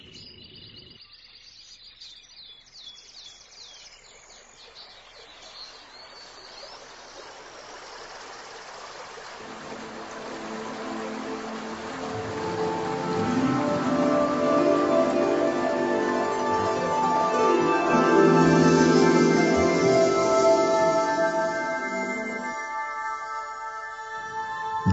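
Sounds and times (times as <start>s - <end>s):
water rushing from a small waterfall: 6.6s - 22.1s.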